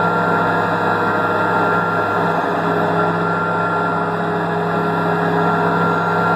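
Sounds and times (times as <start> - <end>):
tank turbine at mid rpm: 0.0 - 6.3.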